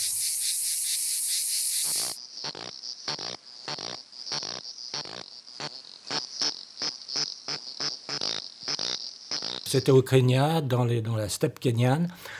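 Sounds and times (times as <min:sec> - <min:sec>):
cicada buzzing: 0:00.0 - 0:09.8
speech: 0:09.7 - 0:12.3.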